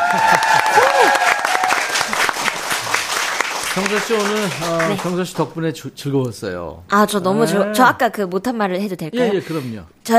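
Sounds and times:
laughter: 0.0s - 0.9s
scattered voices and cheers: 0.0s - 2.2s
studio audience applause: 0.0s - 5.3s
speech: 3.8s - 10.1s.

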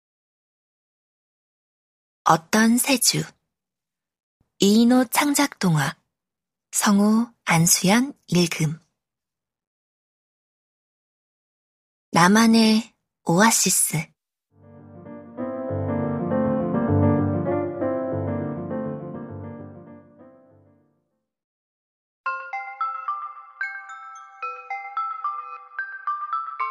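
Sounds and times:
speech: 2.3s - 3.4s, 4.6s - 6.0s, 6.7s - 8.8s, 12.1s - 14.1s
full musical passage: 14.6s - 20.8s.

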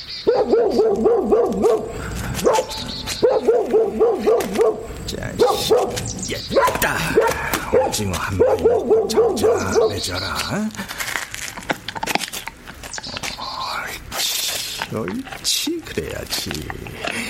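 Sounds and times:
speech: 0.3s - 2.6s, 7.9s - 11.0s, 14.9s - 17.2s
dog barking: 0.3s - 10.2s.

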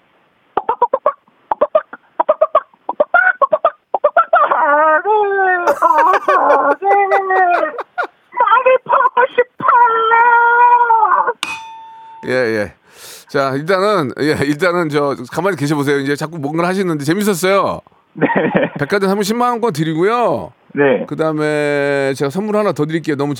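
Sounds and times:
person imitating chicken clucks and crowing: 0.6s - 11.4s
laughter: 5.6s - 8.2s, 18.2s - 18.9s
speech: 12.3s - 23.3s.

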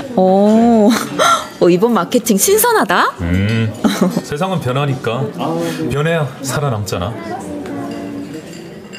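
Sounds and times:
murmur of voices: 0.0s - 8.9s
speech: 0.2s - 1.0s, 1.6s - 7.5s
ceramic plates set down on a table: 7.5s - 8.9s.

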